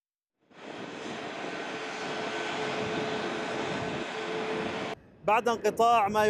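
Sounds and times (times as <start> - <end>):
passenger jet engine roaring on takeoff: 0.4 - 5.0
speech: 5.3 - 6.2.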